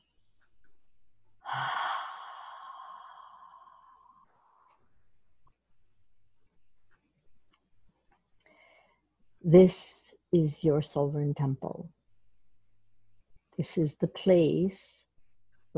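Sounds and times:
voiced exhale through the mouth in a guided meditation: 1.4 - 4.7
faint soft breathing noises: 1.4 - 5.2, 8.4 - 9.2
speech: 9.5 - 12.0, 13.6 - 15.0.

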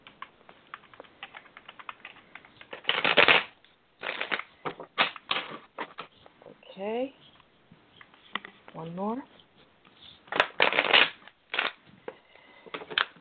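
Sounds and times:
deck of cards being shuffled: 0.1 - 6.4, 8.7 - 11.8
speech: 8.8 - 9.4.

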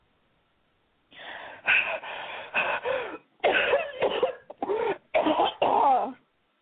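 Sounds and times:
ragged wheezy breaths: 1.1 - 3.3, 4.6 - 5.1
person coughing after a cigarette puff: 3.4 - 6.2.

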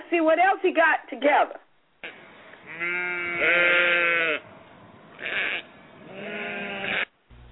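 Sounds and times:
speech: 0.1 - 1.6, 2.8 - 3.8
sheep bleating: 2.0 - 4.5, 5.2 - 7.1.

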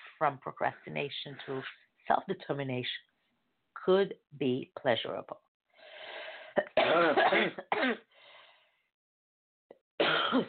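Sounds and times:
speech: 0.2 - 3.1, 3.8 - 5.4, 6.6 - 8.1
coughing: 6.6 - 8.1, 10.0 - 10.4.

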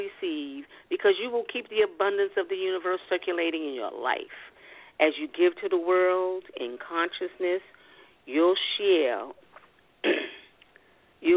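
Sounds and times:
speech: 1.0 - 9.4
person clearing throat: 10.0 - 10.5.

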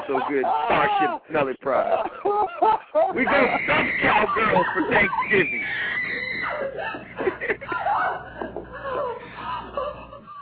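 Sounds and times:
laughter: 0.0 - 10.3
speech: 0.1 - 7.6
woman screaming and wailing: 3.3 - 7.0.

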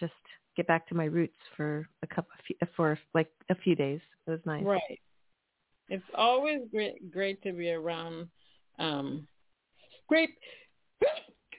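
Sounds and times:
speech: 0.0 - 5.1, 5.9 - 9.3, 10.1 - 11.4
short sharp sneezes: 11.0 - 11.5.

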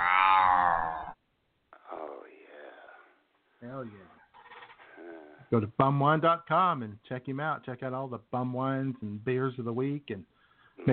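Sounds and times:
cat meowing: 0.0 - 1.2
speech: 3.8 - 4.2, 5.5 - 10.9.

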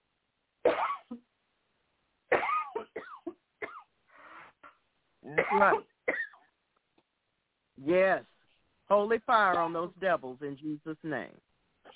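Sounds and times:
person coughing hoarsely: 0.7 - 1.2, 2.3 - 3.9, 4.6 - 6.4
speech: 5.5 - 6.2, 7.8 - 8.3, 8.9 - 11.5.

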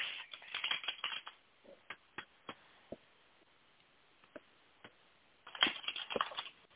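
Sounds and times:
deck of tarot cards being shuffled: 0.0 - 1.4, 5.5 - 6.6.

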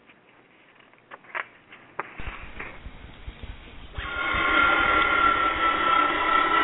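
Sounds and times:
Boeing 727 jet aircraft engines roaring with a high whine: 2.2 - 6.6.

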